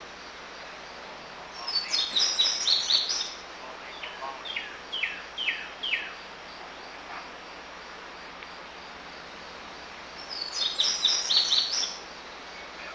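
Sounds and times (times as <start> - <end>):
steady background hiss: 0.0 - 12.9
bird twittering: 1.5 - 6.2, 10.2 - 12.0.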